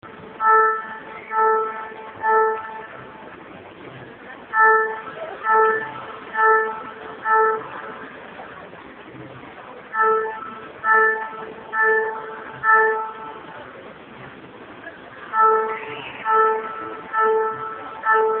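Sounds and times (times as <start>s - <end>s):
siren: 0.3s - 3.3s, 4.4s - 8.0s, 9.9s - 13.6s, 15.4s - 18.3s.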